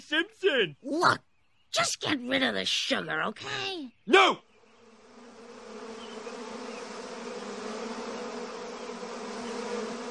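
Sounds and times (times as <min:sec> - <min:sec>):
speech: 0:00.0 - 0:04.5
swarm of bees buzzing over sugar: 0:04.5 - 0:10.0.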